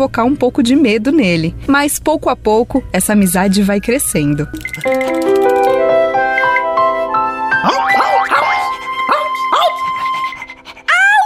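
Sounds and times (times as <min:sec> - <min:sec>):
speech: 0:00.0 - 0:05.3
rising chiming musical tones: 0:04.5 - 0:07.0, 0:07.6 - 0:09.2
dog barking: 0:07.6 - 0:10.0.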